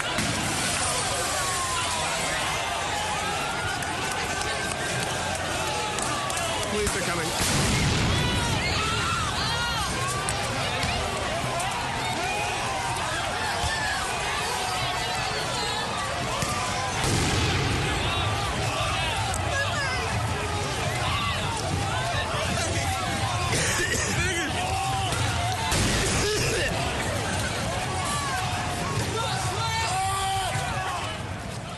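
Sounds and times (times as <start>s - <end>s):
dense noisy street protest crowd shouting and clamoring: 0.0s - 31.7s
speech: 6.8s - 7.8s
loud bangs: 7.3s - 9.4s, 16.3s - 19.4s.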